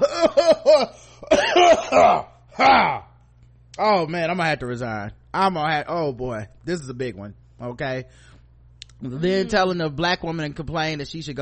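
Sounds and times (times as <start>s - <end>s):
man letting out exaggerated theatrical fake coughs: 0.0s - 3.1s
speech: 4.0s - 8.3s, 9.0s - 11.3s.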